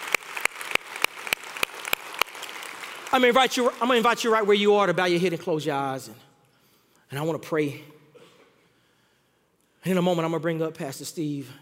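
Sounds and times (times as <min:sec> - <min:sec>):
church congregation clapping hands in praise in rhythmic unison: 0:00.0 - 0:05.2
speech: 0:03.1 - 0:06.3, 0:07.1 - 0:08.0, 0:09.8 - 0:11.6.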